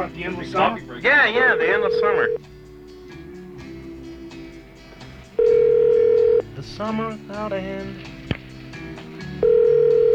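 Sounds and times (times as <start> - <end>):
speech: 0.0 - 2.5, 6.6 - 8.1
faint phone line hum: 1.4 - 2.4, 5.4 - 6.4, 9.4 - 10.1
telephone ringback tone: 1.4 - 2.4, 5.4 - 6.4, 9.4 - 10.1.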